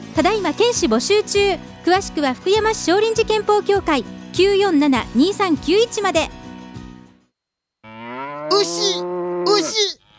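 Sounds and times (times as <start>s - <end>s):
speech: 0.2s - 6.4s
cow mooing: 7.8s - 9.8s.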